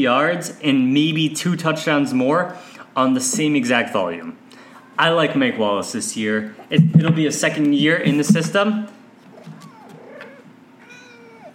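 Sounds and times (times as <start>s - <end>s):
speech: 0.0s - 8.9s
laughter: 6.7s - 8.8s
kitten meowing: 9.3s - 11.5s.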